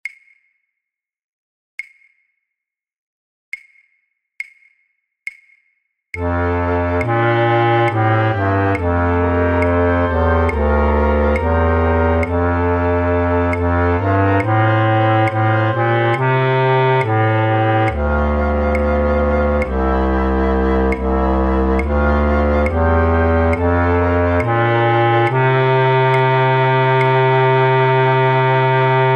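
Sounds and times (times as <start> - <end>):
contrabass flute playing in a flute orchestra practice track: 6.2 - 29.1.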